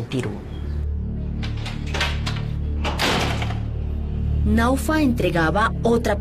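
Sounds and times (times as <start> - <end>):
speech: 0.1 - 0.5, 4.4 - 6.1
metal security gate being opened with loud rattle and clanking: 1.3 - 3.8.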